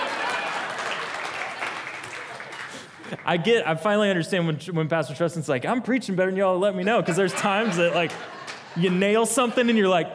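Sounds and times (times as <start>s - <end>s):
room full of people clapping: 0.0s - 3.6s, 7.4s - 9.2s
laughter: 0.0s - 3.7s, 6.6s - 10.0s
speech: 3.1s - 10.1s.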